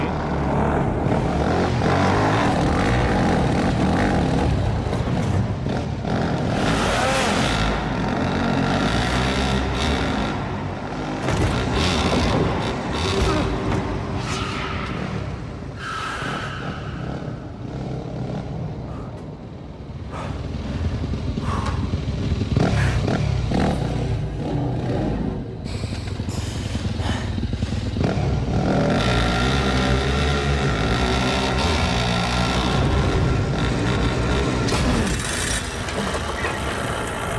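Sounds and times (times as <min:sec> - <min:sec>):
sluggish motorcycle engine roaring: 0:00.0 - 0:37.3.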